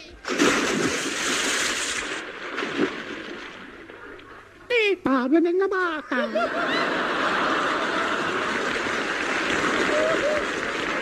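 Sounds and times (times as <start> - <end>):
splash of a child thrown into the sea: 0.2 - 4.3, 8.6 - 10.9
sea water churning and sloshing: 0.2 - 4.7, 8.2 - 10.9
speech: 5.1 - 7.4
laughter: 6.0 - 10.9.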